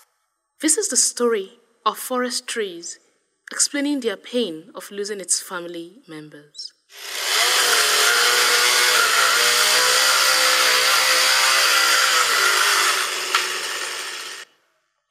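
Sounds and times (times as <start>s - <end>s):
speech: 0.6s - 7.2s
chainsaw engine running at high revs: 6.9s - 14.5s.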